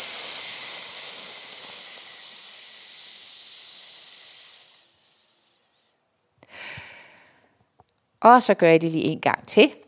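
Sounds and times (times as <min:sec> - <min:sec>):
breathy intake: 0:00.0 - 0:05.8
person hissing psss as a singing warm-up exercise: 0:00.0 - 0:07.1
speech: 0:08.2 - 0:09.8.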